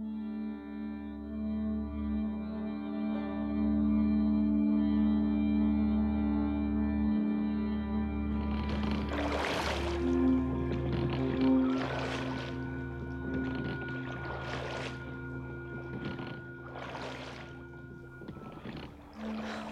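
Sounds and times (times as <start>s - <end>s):
sustained low humming drone: 0.0s - 19.7s
oars dipping and splashing through river water at night: 8.3s - 19.7s.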